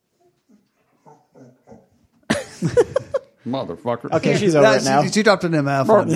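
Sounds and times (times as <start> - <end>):
dog whimpering when petting stops: 0.1 - 2.1
laughter: 1.1 - 3.4
speech: 2.6 - 6.1.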